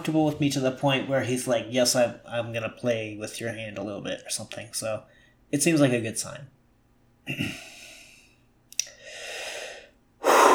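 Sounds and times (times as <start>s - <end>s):
speech: 0.0s - 6.6s, 7.2s - 7.7s
heavy breathing into microphone: 7.7s - 10.5s.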